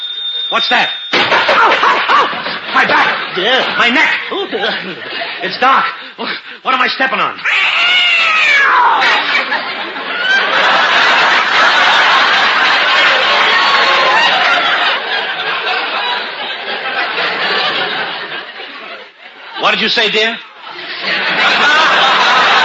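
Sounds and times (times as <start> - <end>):
speech: 0.5 - 8.0, 8.6 - 10.8, 19.6 - 21.8
laughter: 1.2 - 6.4, 8.9 - 22.6
cat yowling and caterwauling: 7.4 - 9.2.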